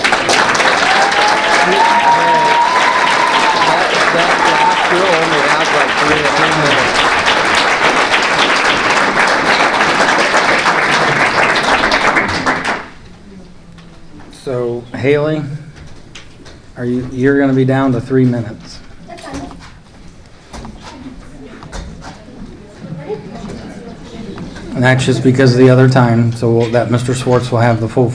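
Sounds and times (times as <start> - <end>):
crowd applauding in support: 0.0 - 13.0
speech: 15.0 - 15.6, 16.8 - 18.7, 24.8 - 28.1.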